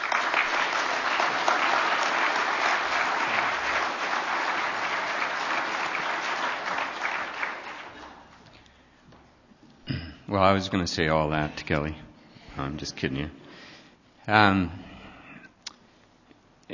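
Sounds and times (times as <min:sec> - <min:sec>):
audience applause: 0:00.0 - 0:08.4
speech: 0:10.3 - 0:12.0, 0:12.6 - 0:13.4, 0:14.3 - 0:14.9.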